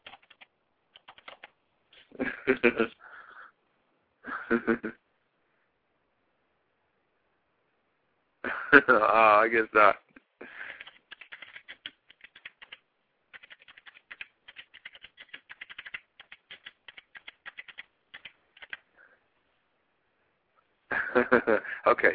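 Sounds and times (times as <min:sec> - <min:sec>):
keyboard typing of a message: 0:00.0 - 0:01.5, 0:10.6 - 0:18.8
speech: 0:02.2 - 0:03.0, 0:04.5 - 0:05.0, 0:08.8 - 0:10.0, 0:21.2 - 0:22.1
laughter: 0:20.9 - 0:22.0.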